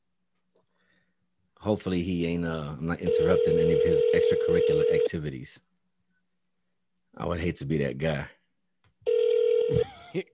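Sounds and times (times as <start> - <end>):
speech: 1.6 - 5.7, 7.2 - 8.4, 9.7 - 10.3
outgoing phone call ringback tone: 3.1 - 5.1, 9.1 - 9.8.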